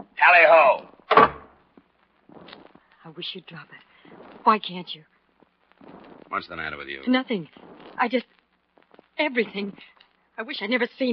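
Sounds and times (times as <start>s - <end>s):
speech: 0.2s - 0.9s, 3.1s - 5.1s, 5.8s - 8.4s, 9.2s - 11.1s
door creaking open: 1.1s - 1.6s.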